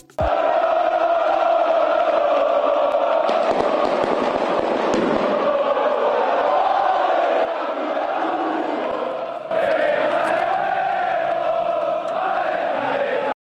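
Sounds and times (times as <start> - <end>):
large crowd of football fans roaring and chanting at team bus arrival: 0.2 - 13.4
sharp firecracker bangs: 3.2 - 5.7.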